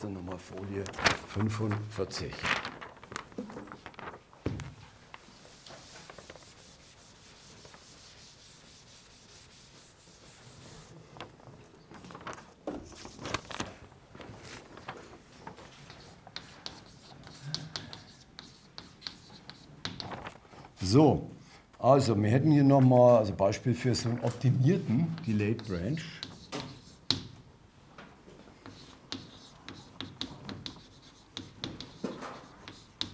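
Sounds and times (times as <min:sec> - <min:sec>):
speech: 0:00.0 - 0:02.7, 0:21.9 - 0:26.2
chalk scratching and tapping on a blackboard during a lecture: 0:05.5 - 0:10.9, 0:15.7 - 0:20.0, 0:25.2 - 0:27.3, 0:28.6 - 0:33.1.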